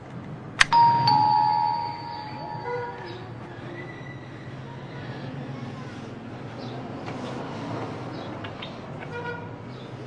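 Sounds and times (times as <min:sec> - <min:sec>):
small electronic doorbell ringing: 0:00.6 - 0:03.4
bright electronic doorbell chime: 0:00.7 - 0:03.3.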